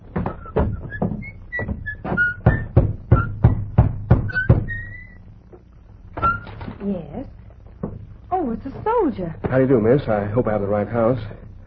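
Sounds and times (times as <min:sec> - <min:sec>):
soldier knocking on the wooden door of a small white cottage: 0:00.1 - 0:04.9
faint high whistling chirps: 0:00.3 - 0:05.3
speech: 0:09.0 - 0:11.4.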